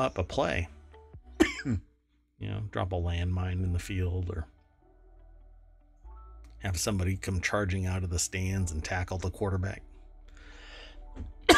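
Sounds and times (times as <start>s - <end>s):
speech: 0.0s - 0.8s, 1.6s - 4.5s, 6.6s - 9.9s, 11.2s - 11.4s
person coughing: 1.4s - 1.8s
throat clearing: 1.4s - 1.8s.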